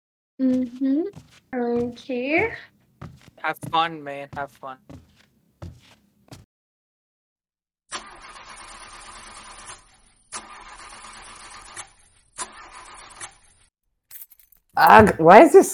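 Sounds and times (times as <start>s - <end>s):
speech: 0.4s - 2.7s, 3.4s - 5.1s, 14.8s - 15.7s
car engine cranking but failing to start: 8.0s - 9.8s.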